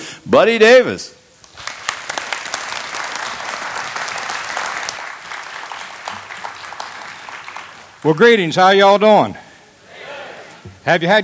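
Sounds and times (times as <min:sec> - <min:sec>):
speech: 0:00.2 - 0:01.2, 0:08.0 - 0:09.4, 0:10.8 - 0:11.2
audience applause welcoming a performer: 0:01.4 - 0:08.3.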